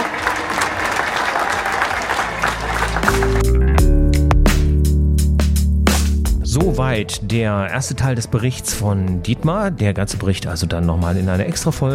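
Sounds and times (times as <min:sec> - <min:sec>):
crowd clapping steadily: 0:00.0 - 0:03.9
loud music with punchy beats and sustained tones: 0:03.0 - 0:07.0
speech: 0:06.8 - 0:11.9.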